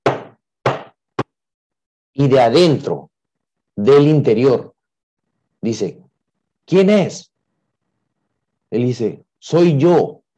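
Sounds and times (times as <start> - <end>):
firm knocks on the wooden door of a cabin: 0.0 - 0.9
speech: 2.2 - 3.1, 3.8 - 4.7, 5.6 - 6.0, 6.7 - 7.3, 8.7 - 10.2.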